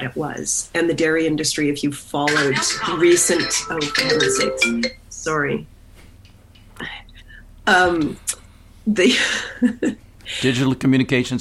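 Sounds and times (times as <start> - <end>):
speech: 0.0 - 5.7, 7.7 - 11.3
melodic mobile phone ringtone with warbling sliding tones: 2.3 - 5.0.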